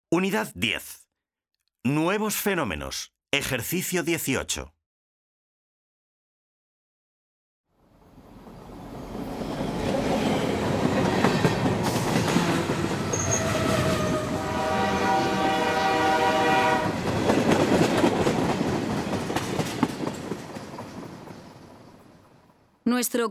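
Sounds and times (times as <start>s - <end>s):
speech: 0.1s - 1.0s, 1.8s - 4.8s, 22.9s - 23.2s
freight train rumbling past on rails with wheels clattering: 7.8s - 22.7s
long freight train horn: 12.2s - 17.0s.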